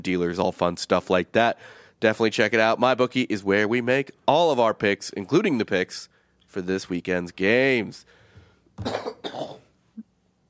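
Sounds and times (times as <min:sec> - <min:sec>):
speech: 0:00.0 - 0:08.2, 0:08.8 - 0:09.6
person coughing: 0:08.8 - 0:10.1.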